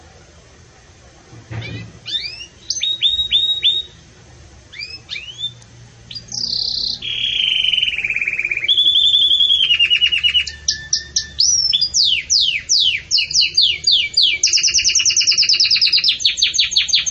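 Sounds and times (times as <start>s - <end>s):
canary song with whistles and trills: 0.0s - 17.0s.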